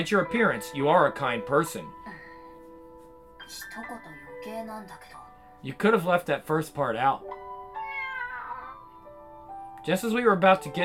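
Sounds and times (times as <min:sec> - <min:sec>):
speech: 0:00.0 - 0:02.0, 0:03.5 - 0:07.4, 0:09.8 - 0:10.8
cat meowing: 0:07.7 - 0:09.0.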